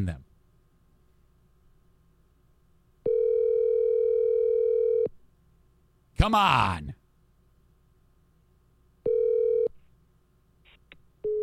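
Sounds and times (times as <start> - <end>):
speech: 0.0 - 0.2, 6.2 - 7.0
telephone ringing on a call: 3.0 - 5.1, 9.0 - 9.7.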